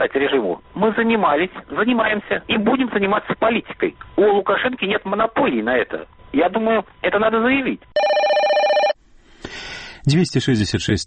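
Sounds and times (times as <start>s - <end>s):
speech: 0.0s - 8.2s, 9.5s - 11.0s
telephone bell ringing with a bright trilling tone: 8.0s - 9.0s.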